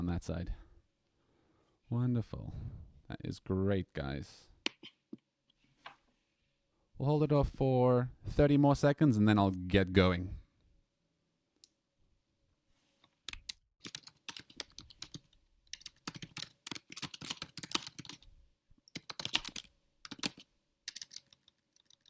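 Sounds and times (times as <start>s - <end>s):
speech: 0.1s - 0.6s, 1.9s - 5.0s, 7.0s - 10.4s
frantic typing on a computer keyboard: 13.3s - 18.2s, 18.9s - 22.0s.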